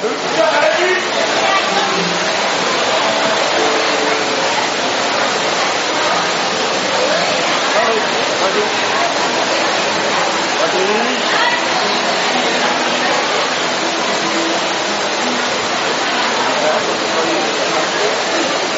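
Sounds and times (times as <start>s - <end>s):
faint voices: 0.0s - 18.7s
heavy rain falling: 0.0s - 18.7s.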